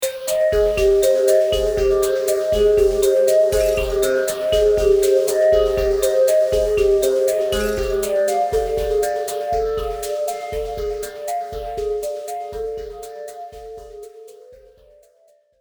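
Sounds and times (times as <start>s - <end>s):
ominous mystery horror exploration music: 0.1s - 14.1s.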